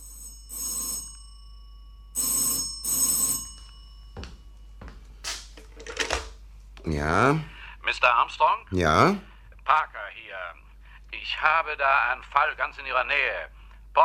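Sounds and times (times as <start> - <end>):
old-style telephone bell ringing: 0.0 - 4.9
speech: 6.9 - 10.6, 11.2 - 14.0.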